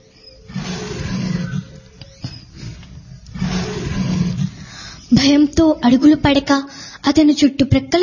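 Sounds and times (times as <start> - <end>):
lion roaring in a forest: 0.4 - 5.1
speech: 5.2 - 8.0.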